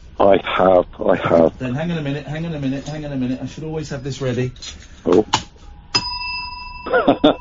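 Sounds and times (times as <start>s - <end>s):
speech: 0.2s - 5.4s, 6.8s - 7.3s
small hand bell ringing: 5.9s - 7.3s.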